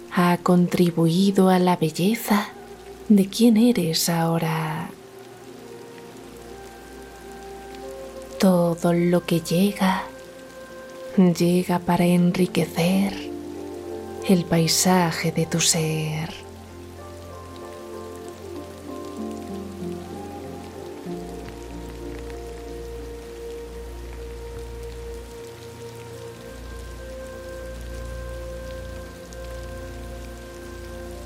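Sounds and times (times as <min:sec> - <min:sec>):
low sustained ambient music tones: 0:00.0 - 0:31.2
steady rain pattering on a surface: 0:00.0 - 0:31.2
speech: 0:00.1 - 0:05.0, 0:08.4 - 0:10.1, 0:11.2 - 0:13.3, 0:14.2 - 0:16.4.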